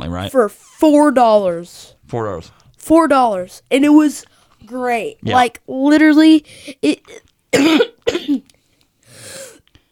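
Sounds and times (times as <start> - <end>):
speech: 0.1 - 8.4
harsh throaty coughs: 7.5 - 8.5.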